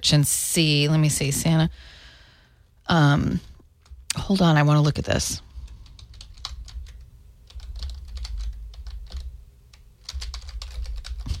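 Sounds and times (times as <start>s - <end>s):
speech: 0.0s - 2.0s, 2.9s - 3.5s, 4.1s - 5.5s
low rumble: 0.0s - 11.3s
typing on a computer keyboard: 5.9s - 11.3s.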